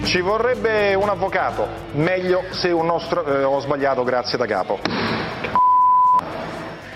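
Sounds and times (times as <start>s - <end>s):
speech: 0.1s - 5.6s
censor bleep over a blasphemous oath: 5.5s - 6.3s.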